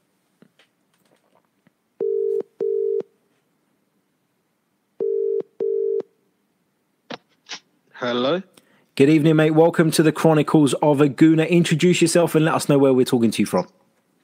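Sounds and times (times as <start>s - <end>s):
telephone double-pulse ringing tones while dialling out to a caller: 2.0s - 3.1s, 5.0s - 6.1s
speech: 8.0s - 13.8s.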